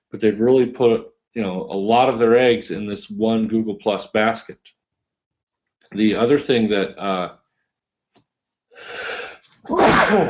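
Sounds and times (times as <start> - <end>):
speech: 0.1 - 4.8, 5.8 - 7.4, 8.8 - 10.2
sneeze: 9.7 - 10.2.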